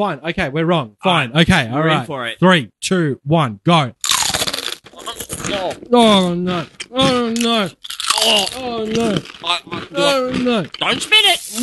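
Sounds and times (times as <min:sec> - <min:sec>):
speech: 0:00.0 - 0:04.0, 0:05.5 - 0:11.6
crunching and chewing of food: 0:04.0 - 0:11.6.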